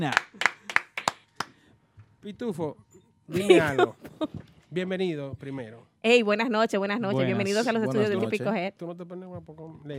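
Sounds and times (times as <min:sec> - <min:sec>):
speech: 0:00.0 - 0:00.4, 0:02.2 - 0:09.9
people clapping in applause in a studio: 0:00.0 - 0:01.7.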